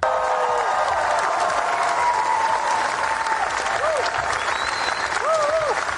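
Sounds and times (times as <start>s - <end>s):
large crowd applauding at a film festival screening: 0.0s - 5.9s
shouts of cheering from a crowd: 0.0s - 5.9s
scattered whistles from a crowd: 4.3s - 5.3s.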